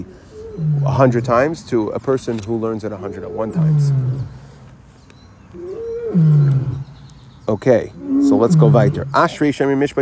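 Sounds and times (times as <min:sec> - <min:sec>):
speech: 0:00.0 - 0:04.4, 0:05.5 - 0:06.7, 0:07.5 - 0:10.0
lions roaring: 0:00.3 - 0:01.6, 0:03.0 - 0:04.6, 0:05.6 - 0:07.0, 0:08.0 - 0:09.4.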